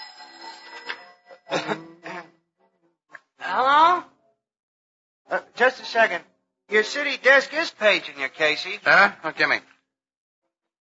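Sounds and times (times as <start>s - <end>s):
old telephone bell ringing: 0.0s - 1.8s
speech: 1.6s - 1.9s, 5.6s - 9.7s.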